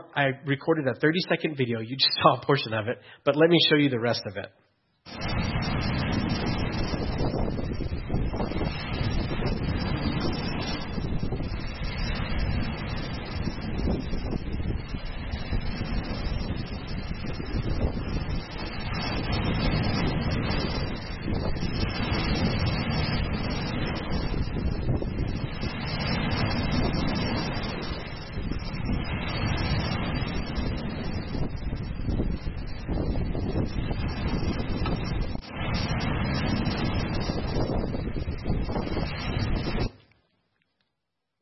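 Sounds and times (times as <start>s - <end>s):
speech: 0.0s - 5.9s
wind roaring against the microphone on a boat: 5.1s - 40.0s
water sloshing and churning against a boat: 39.9s - 40.8s.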